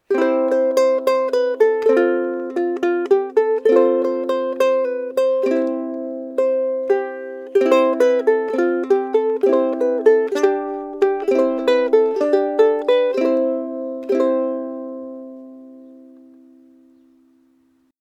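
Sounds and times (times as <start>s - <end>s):
ukulele improvisation in C major: 0.0s - 17.9s.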